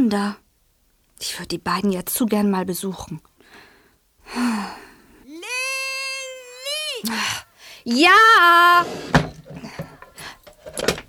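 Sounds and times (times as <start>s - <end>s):
speech: 0.0s - 0.4s, 1.2s - 3.7s, 7.0s - 9.2s
faint scraping: 8.5s - 10.9s
wooden drawer sliding shut: 8.7s - 11.0s.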